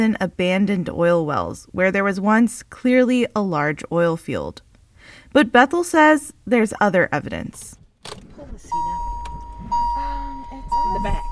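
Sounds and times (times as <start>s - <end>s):
speech: 0.0s - 9.0s
person settling into the back seat of a car on a hot wet day: 8.0s - 11.3s
car warning chime: 8.7s - 11.3s.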